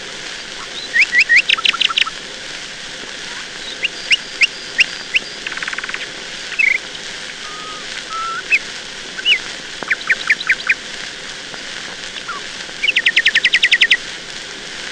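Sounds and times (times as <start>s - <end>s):
faint hiss: 0.0s - 14.9s
nightingale singing: 0.6s - 2.1s, 3.4s - 10.8s, 12.1s - 14.0s.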